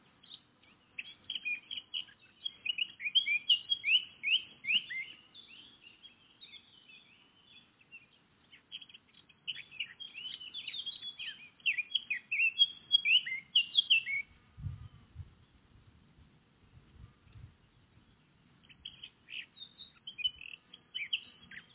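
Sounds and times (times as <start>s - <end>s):
Eurasian blackcap Sylvia atricapilla singing rapid warbled and slurred whistled notes: 0.2s - 14.4s, 18.6s - 21.7s.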